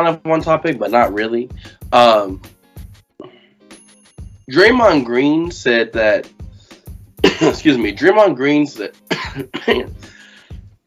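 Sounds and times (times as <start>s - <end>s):
speech: 0.0s - 2.6s, 4.5s - 6.4s, 7.4s - 10.1s
man clearing his throat: 7.2s - 7.7s, 9.1s - 10.0s
man giving short rough coughs: 7.2s - 7.8s, 9.0s - 10.2s.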